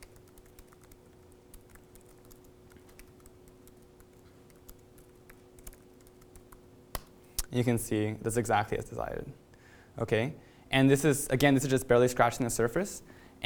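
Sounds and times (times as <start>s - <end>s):
typing a command on a computer keyboard: 0.0s - 7.1s
steady low hum: 0.0s - 13.4s
speech: 7.6s - 9.4s, 10.0s - 13.4s.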